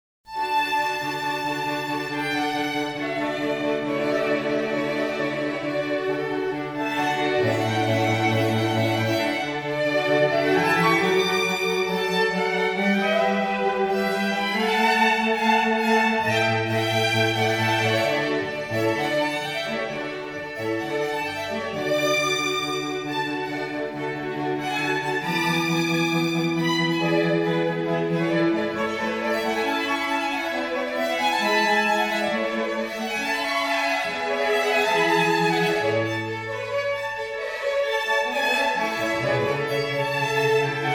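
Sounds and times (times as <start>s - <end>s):
distant quartet playing: 1.1s - 40.9s.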